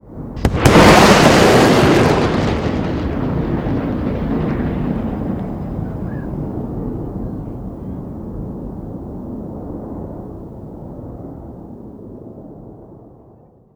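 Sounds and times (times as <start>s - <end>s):
animation jet sonic boom: 0.4s - 7.3s.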